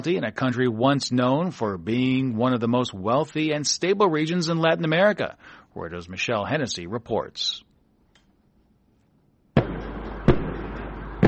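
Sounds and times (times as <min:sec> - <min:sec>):
speech: 0:00.0 - 0:07.7
tear gas shots echoing through a city during riot police clash with protesters: 0:09.6 - 0:11.2.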